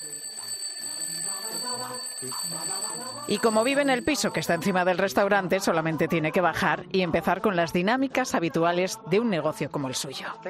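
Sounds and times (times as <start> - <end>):
alarm clock ringing: 0.0 - 5.0
speech: 2.2 - 10.4.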